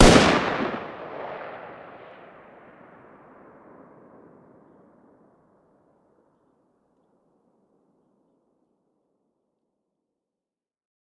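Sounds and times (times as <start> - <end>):
distant 5.56x45 machine gun fire outdoors: 0.0 - 1.6.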